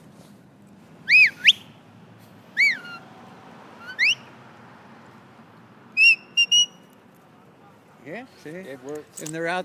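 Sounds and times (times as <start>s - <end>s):
faint outdoor noise: 0.0s - 9.6s
sharp sheepdog herding whistles directing a working border collie on sheep: 1.0s - 1.8s, 2.6s - 3.0s, 3.8s - 4.3s, 6.0s - 6.8s
speech: 8.1s - 9.6s.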